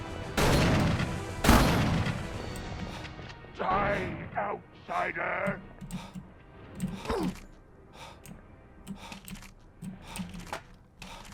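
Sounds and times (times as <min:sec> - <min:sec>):
shotgun gunfire in a video game: 0:00.4 - 0:02.4
speech: 0:03.9 - 0:06.1.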